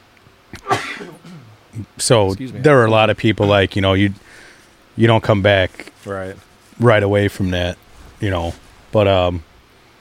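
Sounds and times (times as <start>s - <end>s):
person sneezing: 0.6s - 1.6s
speech: 1.0s - 4.2s, 5.0s - 9.5s
trailing breath: 4.2s - 4.8s.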